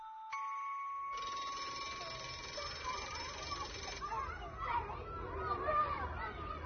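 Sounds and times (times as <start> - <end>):
school bell ringing: 0.0 - 5.2
noisy crowd of children chattering and playing: 1.2 - 6.6.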